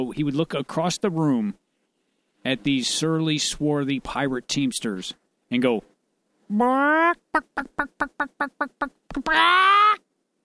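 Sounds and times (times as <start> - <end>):
speech: 0.0 - 1.6, 2.4 - 5.9, 6.5 - 10.0
person imitating a chicken with clucks and a drawn-out squawk: 6.5 - 10.1.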